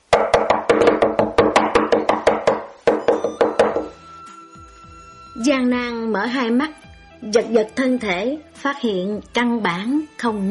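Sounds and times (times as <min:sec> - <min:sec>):
knocking on a door: 0:00.1 - 0:04.0
speech: 0:05.4 - 0:10.4.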